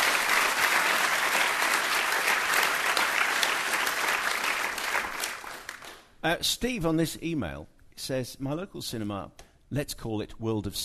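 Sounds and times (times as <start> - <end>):
crowd applauding: 0.0 - 6.1
speech: 6.2 - 10.8.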